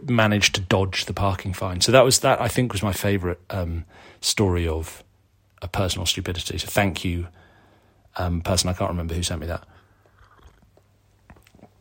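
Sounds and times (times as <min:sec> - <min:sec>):
speech: 0:00.1 - 0:05.0, 0:05.6 - 0:07.4, 0:08.2 - 0:09.7
swallowing: 0:09.8 - 0:11.7
person slurping a drink from a cup: 0:10.0 - 0:11.7.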